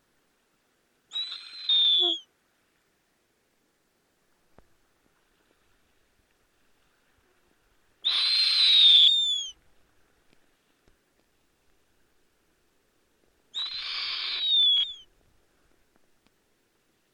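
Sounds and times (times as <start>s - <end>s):
snowy owl screeching with harsh drawn-out high screams: 1.1s - 2.2s, 8.0s - 9.6s, 13.5s - 15.1s.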